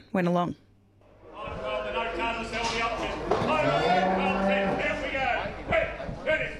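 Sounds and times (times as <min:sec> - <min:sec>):
speech: 0:00.2 - 0:00.6
sale yard noise: 0:01.0 - 0:06.5
indistinct voices: 0:01.1 - 0:06.5
cattle mooing in sale yard pens during a fundraising sale: 0:01.7 - 0:05.3.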